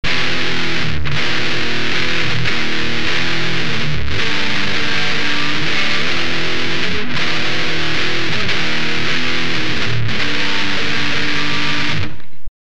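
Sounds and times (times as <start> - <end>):
saturated metal guitar: 0.0 - 12.5.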